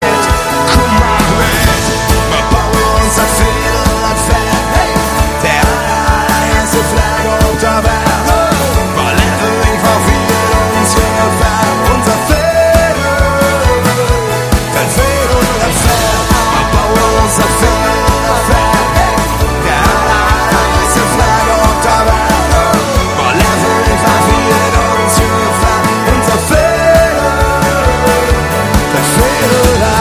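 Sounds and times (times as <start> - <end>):
live orchestra music: 0.0 - 29.9.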